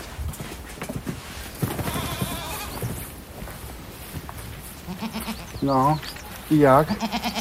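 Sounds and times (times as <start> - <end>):
goats shuffling and moving: 0.0 - 7.4
goats bleating in their pen on a cheese-making farm: 1.7 - 2.9, 4.7 - 7.4
speech: 5.6 - 7.4.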